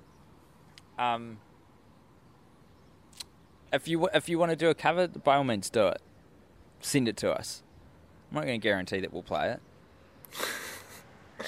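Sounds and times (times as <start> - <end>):
speech: 1.0 - 1.5, 3.7 - 6.1, 6.8 - 7.6, 8.3 - 9.7, 10.3 - 10.6
breathy hissing sneeze: 10.3 - 11.4.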